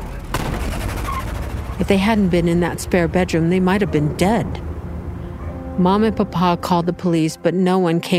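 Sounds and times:
gunshots: 0.3 - 1.2
speech: 1.8 - 4.7, 5.8 - 8.1.

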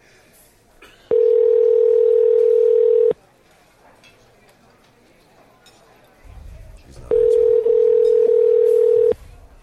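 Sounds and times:
outgoing phone call ringback tone: 1.1 - 3.2, 7.1 - 9.2.

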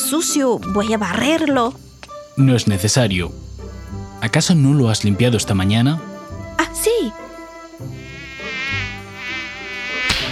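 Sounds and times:
speech: 0.1 - 3.5, 4.2 - 6.1, 6.9 - 7.2
mosquito whining as it hovers: 3.3 - 4.7, 6.0 - 10.3.

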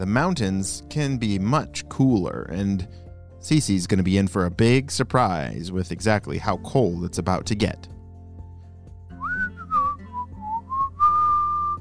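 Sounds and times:
speech: 0.0 - 8.0
person whistling a melody while walking a hill trail: 9.1 - 11.7.

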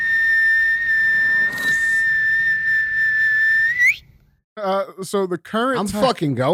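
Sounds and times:
shrill whistle blast: 0.0 - 4.2
speech: 4.6 - 6.5.

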